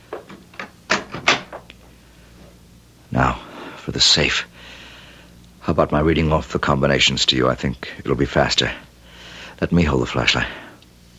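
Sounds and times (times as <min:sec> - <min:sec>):
door being pushed shut: 0:00.2 - 0:01.7
door thuds: 0:00.9 - 0:01.6
speech: 0:04.0 - 0:04.8, 0:05.6 - 0:08.8, 0:09.6 - 0:10.6.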